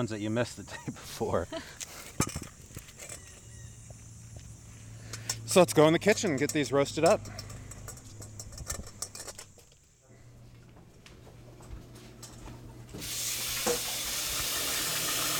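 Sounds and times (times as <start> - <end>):
speech: 0.0 - 2.3, 5.5 - 7.4
clicks and knocks of handling: 5.2 - 9.8
tomatillos rinsed under a running kitchen tap: 13.0 - 15.3.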